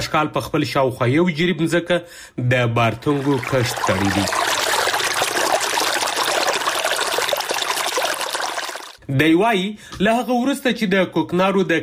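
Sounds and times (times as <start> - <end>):
speech: 0.0 - 4.5, 9.1 - 11.8
water flowing while irrigating a farm field: 2.8 - 9.0.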